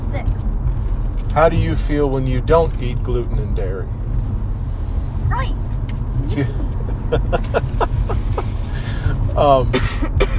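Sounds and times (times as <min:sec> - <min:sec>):
low rumble: 0:00.2 - 0:09.8
speech: 0:01.4 - 0:04.0, 0:05.3 - 0:07.9, 0:09.4 - 0:10.3
laughter: 0:06.2 - 0:08.7
person coughing in a harsh coughing fit: 0:09.6 - 0:10.3.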